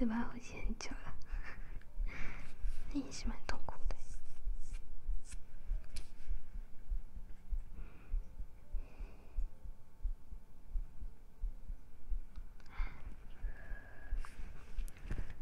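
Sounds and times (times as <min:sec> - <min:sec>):
speech: 0:00.0 - 0:01.3, 0:02.9 - 0:04.0
constant low hum: 0:00.0 - 0:15.3
heartbeat recorded by a microphone placed directly on the chest: 0:00.9 - 0:15.3.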